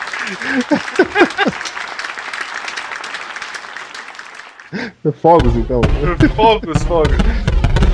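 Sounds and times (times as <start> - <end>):
applause from many hands: 0.0 - 4.9
laughter: 0.2 - 1.8
speech: 0.2 - 1.8, 4.7 - 7.5.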